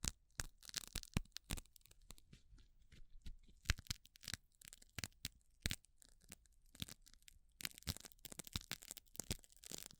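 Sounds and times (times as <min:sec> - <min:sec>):
gloves being handled, snapping and crinkling: 0:00.0 - 0:09.9
quiet soft rustling: 0:02.1 - 0:03.8.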